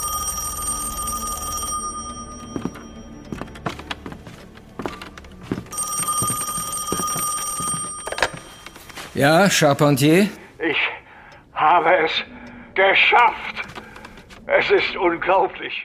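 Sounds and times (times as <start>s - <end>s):
telephone bell ringing in an office: 0.0s - 3.6s, 5.7s - 9.2s
speech: 9.2s - 10.8s, 11.7s - 13.5s, 14.5s - 15.8s.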